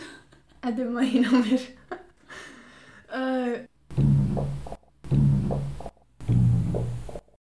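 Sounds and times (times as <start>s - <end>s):
speech: 0.7s - 1.8s
loud low sputtering fart sounds: 3.9s - 7.1s.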